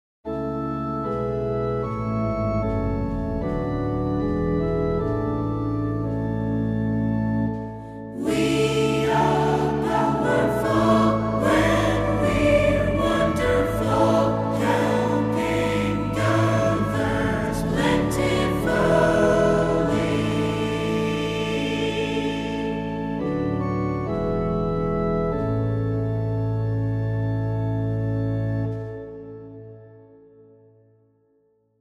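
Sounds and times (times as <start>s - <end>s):
organ accompaniment: 0.3s - 30.2s
choir singing: 8.1s - 23.7s.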